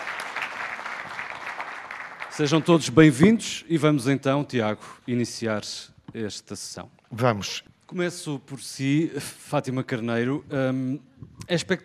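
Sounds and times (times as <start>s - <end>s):
audience clapping: 0.0s - 3.0s
speech: 2.4s - 11.8s.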